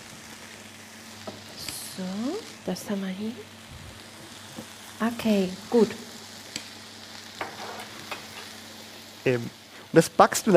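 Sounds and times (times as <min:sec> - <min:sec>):
onions sizzling in a frying pan: 0:00.0 - 0:10.5
speech: 0:02.0 - 0:03.6, 0:05.0 - 0:06.1, 0:09.2 - 0:10.5
utensil scraping while stirring onions: 0:07.4 - 0:08.6.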